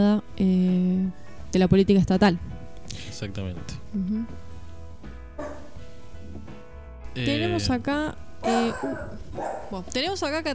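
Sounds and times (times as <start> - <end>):
speech: 0.0 - 0.6, 1.5 - 2.5, 3.1 - 4.4, 7.2 - 10.5
female pet dog barking: 5.4 - 5.8, 8.4 - 9.9
faint murmuring: 8.4 - 9.8.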